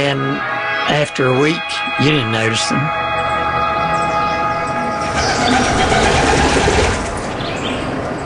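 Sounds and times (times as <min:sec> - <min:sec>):
speech: 0:00.0 - 0:03.1, 0:05.5 - 0:06.0
train passing on railroad track: 0:02.7 - 0:08.2.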